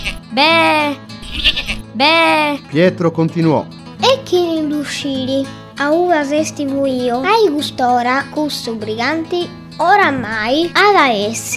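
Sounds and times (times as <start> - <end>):
goat bleating in the countryside: 0.0 - 0.2, 1.2 - 1.9
speech: 0.4 - 4.1, 4.8 - 11.5.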